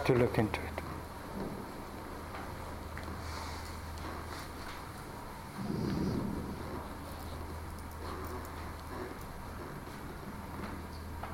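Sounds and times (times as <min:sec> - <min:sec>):
speech: 0:00.0 - 0:00.8
wind: 0:00.0 - 0:11.2
thunder rumbling: 0:05.5 - 0:08.2.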